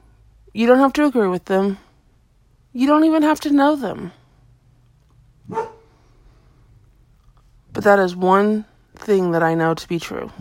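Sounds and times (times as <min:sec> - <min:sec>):
speech: 0:00.6 - 0:01.8, 0:02.8 - 0:04.2, 0:07.8 - 0:10.3
pet dog barking: 0:05.5 - 0:05.9.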